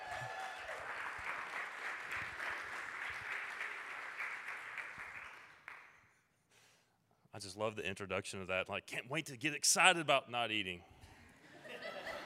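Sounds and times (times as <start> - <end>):
audience clapping hands in steady dense applause: 0.0 - 6.0
speech: 7.4 - 10.9
laughter: 11.4 - 12.2.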